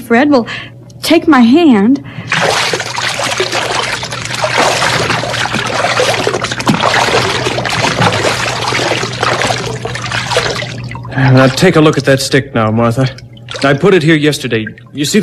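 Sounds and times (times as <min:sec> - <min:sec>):
speech: 0:00.1 - 0:02.7, 0:11.2 - 0:15.2
two people wading barefoot through shallow river water: 0:02.3 - 0:12.2, 0:13.0 - 0:15.2.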